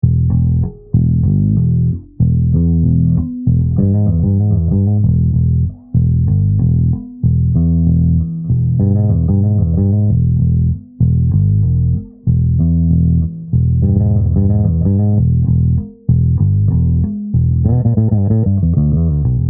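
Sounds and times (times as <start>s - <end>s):
finger groove: 0.0s - 19.4s.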